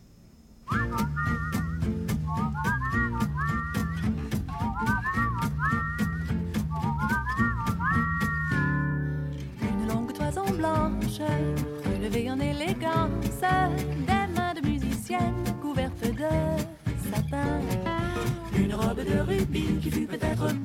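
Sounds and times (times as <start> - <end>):
bright whistle-like lead melody in a recorded band song: 0.7 - 9.3
pulsing rhythmic backing and bass of a recorded band song: 0.7 - 20.6.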